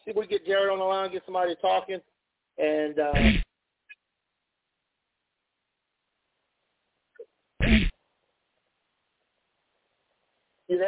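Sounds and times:
speech: 0:00.1 - 0:03.4
person sneezing over a phone line: 0:03.2 - 0:03.4, 0:07.6 - 0:07.9.

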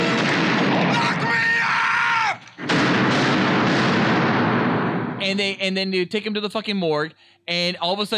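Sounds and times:
gunfire as police shoot a man: 0:00.0 - 0:01.6, 0:02.4 - 0:05.5
speech: 0:05.6 - 0:08.1.

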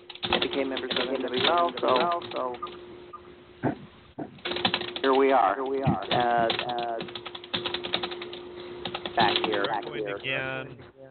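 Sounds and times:
loud typing on a computer keyboard: 0:00.0 - 0:02.8, 0:04.4 - 0:10.3
speech: 0:00.5 - 0:02.9, 0:05.0 - 0:07.2, 0:09.2 - 0:10.8.

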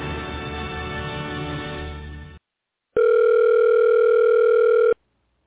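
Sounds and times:
answering machine greeting: 0:03.0 - 0:05.0
electronic telephone ring: 0:03.0 - 0:05.0.

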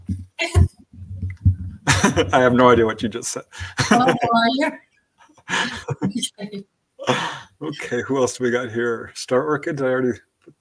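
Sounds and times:
laughter: 0:01.8 - 0:04.6, 0:05.5 - 0:06.2
speech: 0:02.0 - 0:04.9, 0:05.5 - 0:10.3
person sneezing: 0:07.0 - 0:07.5.

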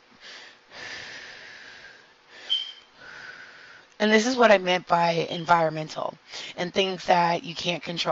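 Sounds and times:
person breathing in and out: 0:00.2 - 0:03.9
speech: 0:04.0 - 0:08.1.

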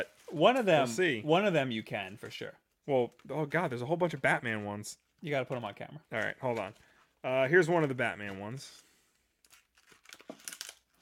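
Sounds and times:
speech: 0:00.0 - 0:08.8
toy package being ripped open: 0:09.4 - 0:11.0.

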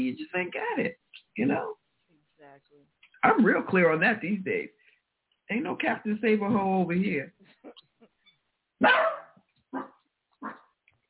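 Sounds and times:
speech: 0:00.0 - 0:01.8, 0:02.8 - 0:04.8, 0:05.5 - 0:07.8, 0:08.8 - 0:09.9
dog barking: 0:08.8 - 0:10.7.

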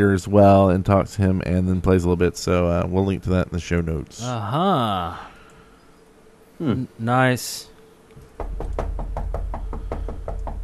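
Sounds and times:
speech: 0:00.0 - 0:05.3, 0:06.6 - 0:07.7
knocking on a door: 0:08.3 - 0:10.6.

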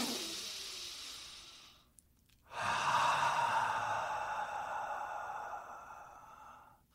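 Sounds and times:
deep breathing in through the nose and out through the mouth: 0:00.0 - 0:06.9.

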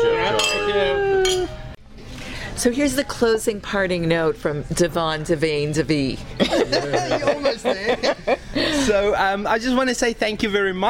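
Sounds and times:
glasses clinking in a toast at a restaurant: 0:00.3 - 0:01.6
speech: 0:02.6 - 0:10.8
laughter: 0:06.4 - 0:09.1.

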